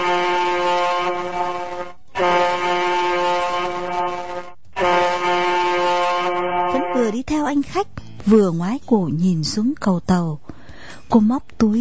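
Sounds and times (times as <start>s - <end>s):
ship's horn blasts at a pier: 0.0s - 7.2s
speech: 7.3s - 11.8s.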